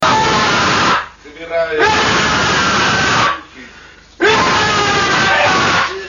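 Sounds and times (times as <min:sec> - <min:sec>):
person screaming: 0:00.0 - 0:01.0, 0:01.8 - 0:03.5, 0:04.2 - 0:06.0.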